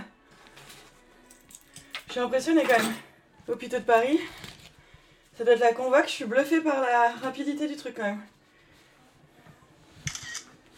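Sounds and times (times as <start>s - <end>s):
speech: 2.1s - 4.4s, 5.4s - 8.4s
camera shutter photographing an envelope: 10.0s - 10.5s.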